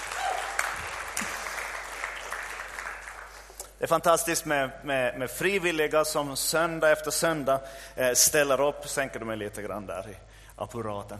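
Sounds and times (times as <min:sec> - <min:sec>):
audience applause for a band: 0:00.0 - 0:03.5
speech: 0:03.8 - 0:11.1.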